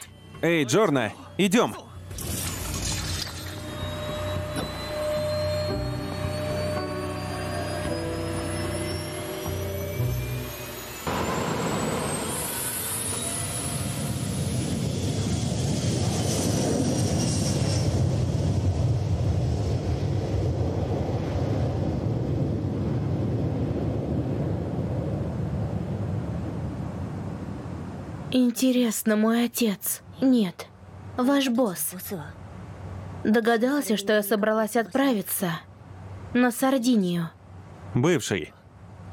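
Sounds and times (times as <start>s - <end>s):
speech: 0.4s - 1.9s, 28.6s - 32.4s, 33.2s - 35.7s, 36.3s - 37.4s, 38.0s - 38.6s
jet aircraft taking off: 2.0s - 27.9s.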